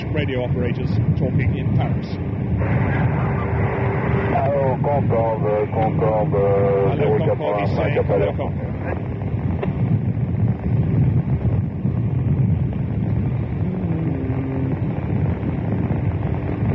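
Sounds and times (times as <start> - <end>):
strong wind gusting on a rooftop buffeting the microphone: 0.0 - 16.7
speech: 0.2 - 3.2, 4.4 - 9.2.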